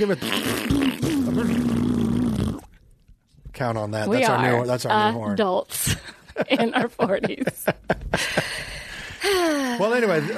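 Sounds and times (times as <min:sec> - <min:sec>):
speech: 0:00.0 - 0:02.0, 0:03.6 - 0:10.3
person imitating a loud fart: 0:00.0 - 0:02.8
laughter: 0:06.2 - 0:08.9.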